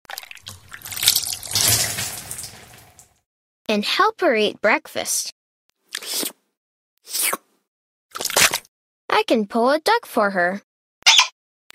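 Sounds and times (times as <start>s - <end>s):
juice being poured: 0.1s - 3.2s
speech: 3.7s - 5.4s, 7.1s - 7.4s, 9.2s - 10.7s.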